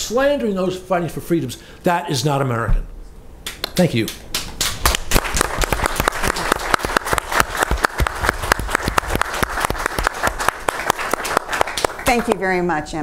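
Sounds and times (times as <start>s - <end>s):
speech: 0.1s - 2.9s, 3.8s - 4.3s, 12.1s - 13.0s
audience applause for an ambassador and a panel at an event: 4.5s - 12.4s.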